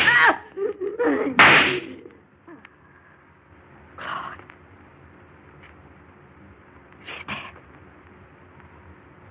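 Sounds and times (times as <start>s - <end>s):
laughter: 0.4s - 1.4s
single gunshot ringing: 1.4s - 1.9s.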